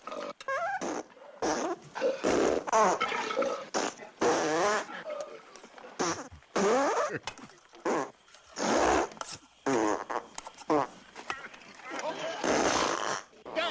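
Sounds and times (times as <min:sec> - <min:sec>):
rapid string of loud farts from a film scene: 0:00.0 - 0:05.1, 0:06.0 - 0:07.2, 0:07.8 - 0:11.0, 0:12.2 - 0:13.6.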